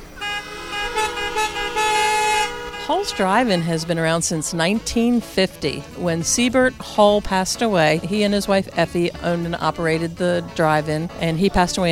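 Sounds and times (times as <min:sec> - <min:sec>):
many car horns honking together at a drive-in theater: 0:00.0 - 0:11.8
speech: 0:02.9 - 0:11.8.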